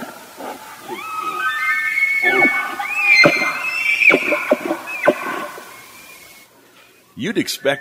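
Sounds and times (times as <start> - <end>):
bull elk bugling: 0.0 - 6.4
speech: 7.2 - 7.8.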